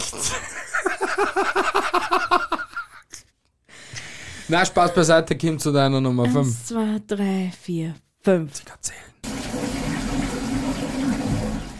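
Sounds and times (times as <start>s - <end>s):
laughter: 0.1s - 3.2s
speech: 1.2s - 2.3s, 4.5s - 9.0s
toilet flushing: 9.2s - 11.7s.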